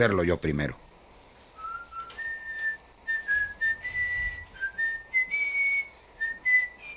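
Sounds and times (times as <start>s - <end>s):
speech: 0.0s - 0.8s
person whistling a sweet gentle melody: 1.6s - 6.9s.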